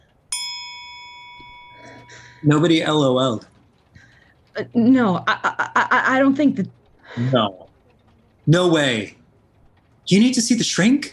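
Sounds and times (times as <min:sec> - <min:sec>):
small bell struck and ringing: 0:00.3 - 0:03.5
speech: 0:01.8 - 0:03.5, 0:04.6 - 0:07.6, 0:08.5 - 0:09.2, 0:10.1 - 0:11.1
laughter: 0:05.2 - 0:06.3.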